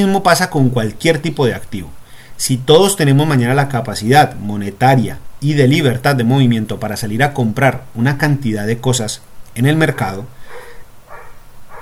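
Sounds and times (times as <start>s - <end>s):
speech: 0.0s - 10.4s
dog barking: 9.8s - 11.8s.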